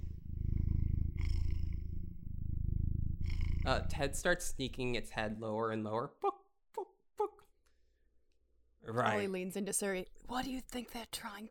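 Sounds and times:
voice imitating a cat purring through a microphone: 0.0s - 5.1s
speech: 3.6s - 6.4s, 8.9s - 11.5s.

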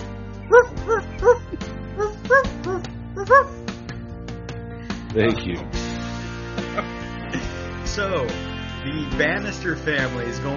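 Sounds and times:
person imitating a dog barking: 0.5s - 3.6s
speech: 5.2s - 5.8s, 8.0s - 10.5s.

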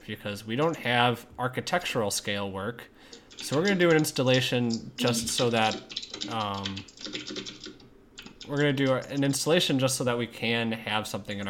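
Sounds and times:
speech: 0.1s - 7.6s, 8.5s - 11.4s
typing on a computer keyboard: 3.1s - 9.9s.

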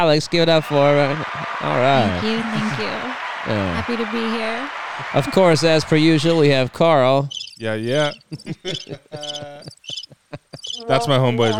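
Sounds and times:
laughter: 0.0s - 6.8s, 7.6s - 11.5s
speech: 0.0s - 10.0s, 10.6s - 11.5s
person imitating cricket chirping: 7.3s - 10.9s.

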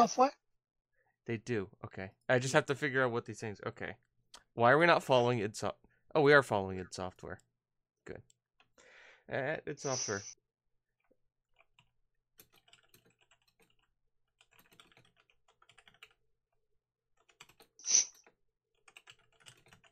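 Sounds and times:
speech: 0.0s - 0.4s, 1.3s - 8.3s, 9.3s - 10.4s
typing on a computer keyboard: 11.6s - 16.2s, 17.2s - 19.9s.

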